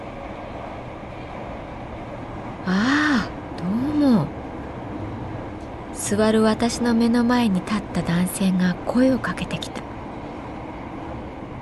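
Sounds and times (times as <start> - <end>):
moving train carriage rumble: 0.0 - 11.6
speech: 2.6 - 2.9, 6.1 - 9.9.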